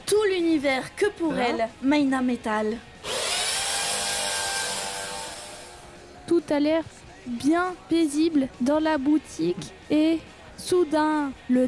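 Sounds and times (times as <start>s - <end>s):
speech: 0.6s - 2.9s, 6.5s - 11.6s
electric drill whirring in a hair salon used to curl hair: 3.0s - 5.9s.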